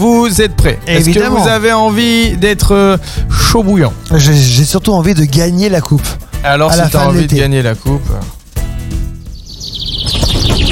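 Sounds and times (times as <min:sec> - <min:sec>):
speech: 0:00.3 - 0:08.4
small bird chirping: 0:09.1 - 0:10.7.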